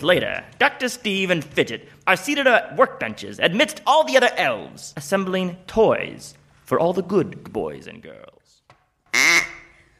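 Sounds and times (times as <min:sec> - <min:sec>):
speech: 0:00.0 - 0:08.5
duck quacking: 0:09.1 - 0:09.7.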